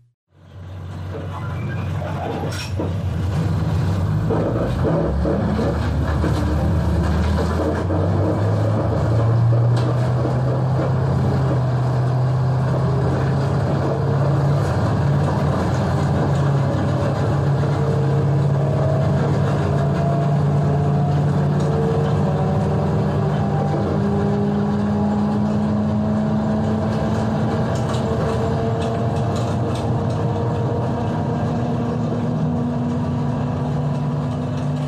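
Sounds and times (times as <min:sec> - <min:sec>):
school bus engine droning on a long ride: 0:00.0 - 0:34.8.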